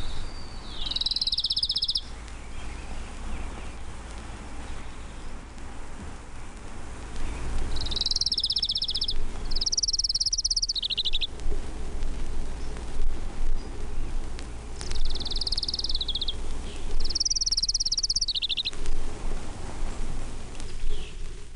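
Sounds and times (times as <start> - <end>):
Townsend's warbler singing high buzzy phrases: 0.0 - 6.6, 7.2 - 11.3, 13.5 - 18.8, 20.6 - 21.3
low outdoor rumble: 0.0 - 21.5.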